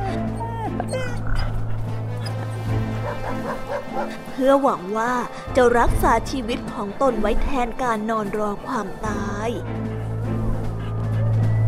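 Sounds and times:
dogs yipping, whimpering and barking: 0.0s - 4.3s, 10.2s - 11.6s
speech: 4.0s - 10.1s.

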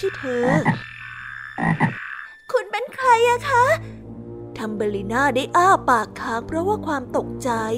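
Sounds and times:
speech: 0.0s - 0.9s, 1.6s - 2.0s, 2.8s - 4.0s, 4.6s - 7.7s
toad croaking: 0.0s - 2.5s.

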